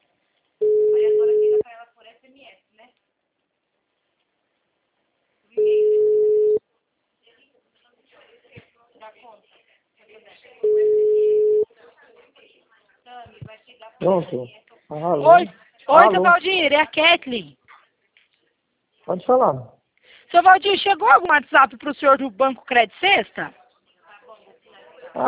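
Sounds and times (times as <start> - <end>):
telephone ringback tones of an outgoing call: 0.6 - 1.6, 5.6 - 6.6, 10.6 - 11.6
speech: 11.8 - 17.6, 19.1 - 23.6.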